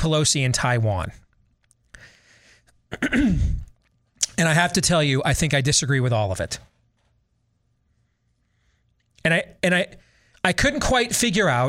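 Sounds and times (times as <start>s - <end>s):
speech: 0.0s - 1.2s, 2.9s - 3.7s, 4.4s - 6.8s, 9.2s - 11.6s
man clearing his throat: 2.9s - 3.7s.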